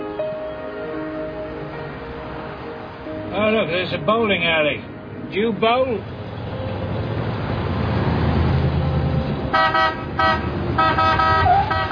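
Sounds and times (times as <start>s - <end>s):
steady rumble of road traffic: 0.0s - 11.9s
speech: 3.3s - 6.2s, 9.5s - 11.3s
car horn honking: 9.5s - 11.9s.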